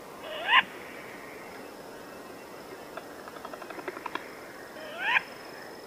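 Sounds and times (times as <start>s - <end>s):
short-eared owl Asio flammeus calling: 0.2s - 1.7s, 2.7s - 5.8s.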